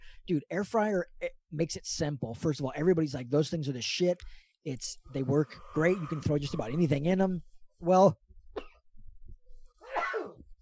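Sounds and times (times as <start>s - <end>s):
speech: 0.3s - 8.7s
person sneezing: 9.8s - 10.4s.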